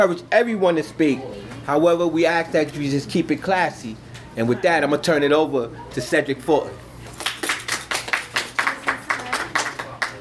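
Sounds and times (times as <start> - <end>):
speech: 0.0 - 6.8
audience clapping at a community conversation meeting: 7.1 - 10.1.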